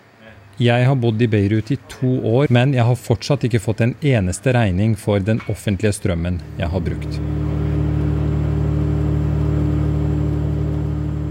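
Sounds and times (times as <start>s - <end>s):
speech: 0.6s - 7.6s
large green diesel generators running next to apartment blocks in Beirut: 6.0s - 11.2s.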